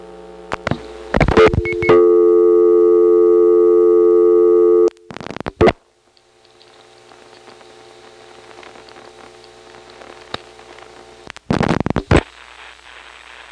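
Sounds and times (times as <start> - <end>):
long faint telephone line hiss: 0.0 - 13.4
steady loud multi-tone telephone signal: 1.4 - 5.0.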